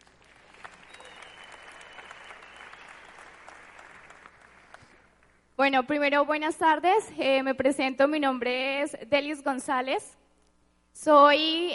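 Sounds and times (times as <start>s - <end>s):
audience applause: 0.0s - 5.2s
sharp individual claps: 0.0s - 5.4s
speech: 5.6s - 10.2s, 11.0s - 11.7s.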